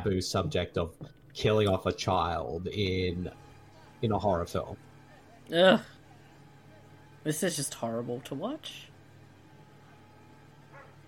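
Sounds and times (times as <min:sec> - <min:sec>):
speech: 0:00.0 - 0:04.9, 0:05.5 - 0:06.0, 0:07.2 - 0:08.9
steady low hum: 0:00.0 - 0:11.0
dog yipping: 0:10.7 - 0:11.0.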